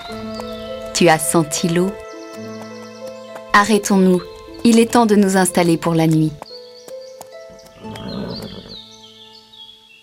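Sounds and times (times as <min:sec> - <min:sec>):
speech: 0:01.0 - 0:02.0, 0:03.6 - 0:06.4
horse snorting: 0:07.5 - 0:08.8
horse whinnying: 0:07.8 - 0:08.8.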